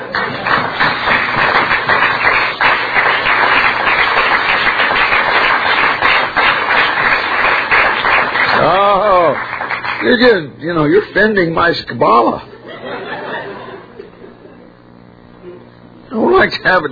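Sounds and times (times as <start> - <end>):
audience applause: 0.0 - 10.3
speech: 10.0 - 12.5, 16.4 - 16.9
laughter: 12.5 - 14.9.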